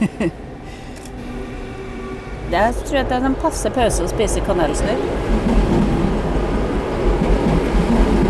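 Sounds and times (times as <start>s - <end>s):
laughter: 0.0s - 0.4s
speech: 0.2s - 0.4s, 2.5s - 5.8s
train rumbling past a house on a busy Norwegian railway line: 0.4s - 8.2s
train wheels rattling on track: 2.4s - 8.2s.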